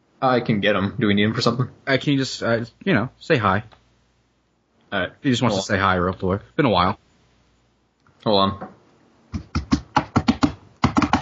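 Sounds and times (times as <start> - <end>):
speech: 0.2 - 3.8, 4.9 - 7.0, 8.2 - 9.5
computer keyboard key strikes: 9.3 - 11.2.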